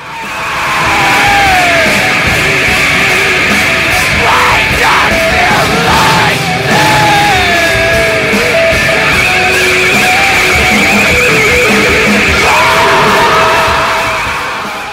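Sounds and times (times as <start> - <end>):
loud distorted rock music with guitar and drums: 0.0 - 14.9
man screaming hoarsely: 0.4 - 2.3, 3.9 - 8.6, 12.3 - 14.9.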